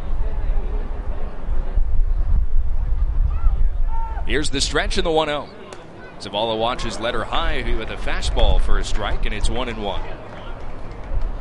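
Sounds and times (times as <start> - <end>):
heavy gusty wind buffeting a microphone: 0.0 - 5.0, 7.4 - 9.6
faint crowd murmur: 0.0 - 11.3
speech: 4.3 - 5.6, 6.2 - 10.2.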